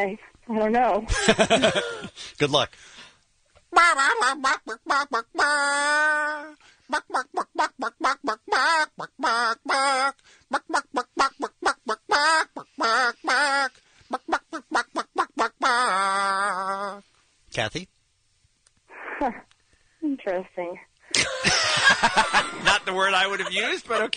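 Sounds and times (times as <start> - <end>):
speech: 0.0 - 3.0, 3.7 - 11.5, 12.2 - 14.8, 15.6 - 18.0, 19.2 - 24.1
laughter: 1.1 - 2.1, 21.2 - 24.1
squeezed rubber chicken clucking a tune: 3.8 - 17.0.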